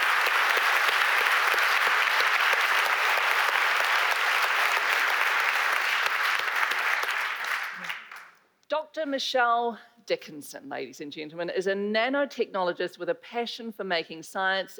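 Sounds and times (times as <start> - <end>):
large audience applause: 0.0 - 8.4
speech: 9.0 - 14.7.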